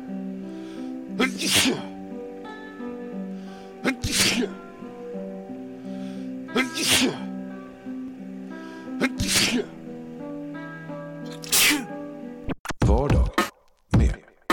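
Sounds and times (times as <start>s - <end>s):
music playing: 0.0s - 14.5s
speech: 1.2s - 1.9s
person sneezing: 1.2s - 2.0s, 3.8s - 4.6s, 6.5s - 7.3s, 9.0s - 9.8s, 11.3s - 11.9s.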